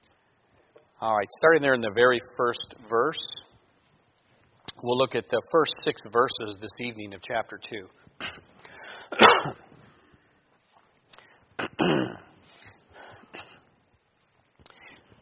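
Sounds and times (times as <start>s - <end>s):
speech: 1.0s - 3.4s, 4.8s - 8.0s
man clearing his throat: 9.1s - 9.7s, 11.6s - 12.4s
man coughing sharply: 9.1s - 9.7s, 11.6s - 12.3s.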